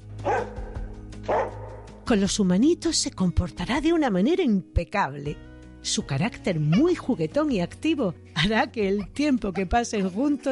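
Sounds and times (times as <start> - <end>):
herding dog barking: 0.2 - 1.9
speech: 2.1 - 10.5.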